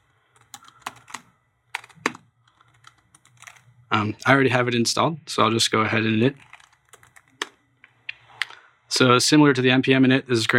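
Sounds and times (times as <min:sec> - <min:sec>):
typing on a computer keyboard: 0:00.0 - 0:03.7, 0:06.3 - 0:07.6
faint low hum: 0:00.0 - 0:10.5
speech: 0:03.9 - 0:06.5, 0:09.0 - 0:10.5.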